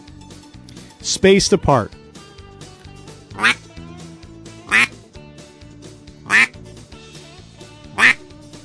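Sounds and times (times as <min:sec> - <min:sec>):
speech: 0:01.0 - 0:02.0
raspy quacks blown on a duck call: 0:03.4 - 0:03.6, 0:04.7 - 0:04.9, 0:06.3 - 0:06.5, 0:08.0 - 0:08.2.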